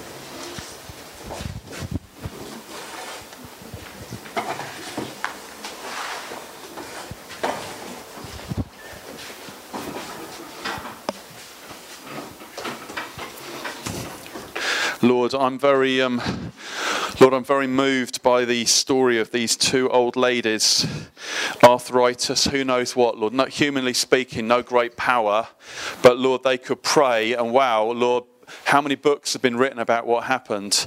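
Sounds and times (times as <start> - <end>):
front-row chairs scraping and dragging across a hard floor: 0.0 - 14.6
speech: 15.1 - 16.5, 17.2 - 30.8.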